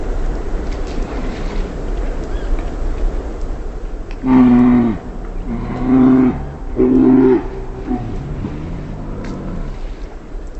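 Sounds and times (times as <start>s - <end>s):
steady rumbling background noise: 0.0s - 10.5s
speech: 4.2s - 4.6s
mammal giving guttural moaning calls in Katmai Alaska: 4.2s - 10.3s.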